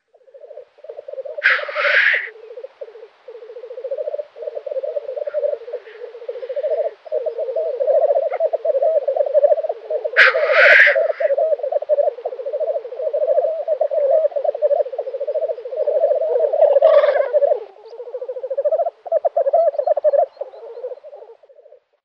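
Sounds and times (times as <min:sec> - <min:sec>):
black grouse Tetrao tetrix calling: 0:00.0 - 0:21.9.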